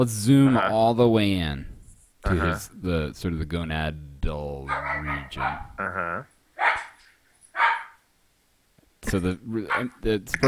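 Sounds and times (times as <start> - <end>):
speech: 0.0 - 6.3, 9.1 - 10.4
dog barking: 4.7 - 5.7, 6.6 - 8.0, 9.7 - 10.0.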